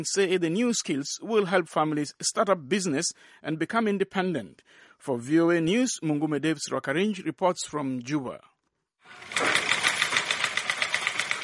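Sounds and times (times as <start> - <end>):
speech: 0.0 - 8.5
sewing machine running: 9.0 - 11.4.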